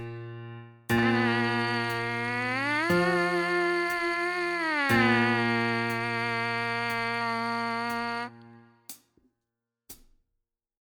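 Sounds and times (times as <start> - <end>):
MPC sampler buzz line: 1.0 - 8.4.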